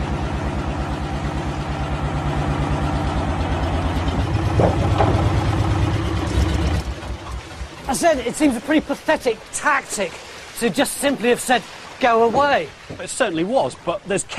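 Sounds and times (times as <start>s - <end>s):
vehicle engine idling: 0.0s - 9.3s
speech: 8.0s - 14.3s.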